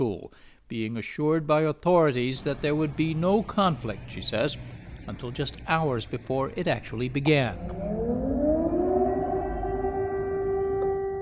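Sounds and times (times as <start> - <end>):
speech: 0.0 - 8.0
air raid siren wailing in Ukraine: 2.4 - 11.2.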